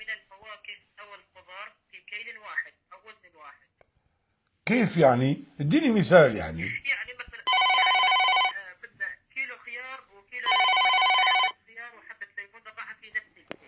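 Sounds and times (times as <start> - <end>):
speech: 4.7 - 6.9
telephone ringing with a bright harmonic buzzing tone: 7.5 - 8.6, 10.4 - 11.6.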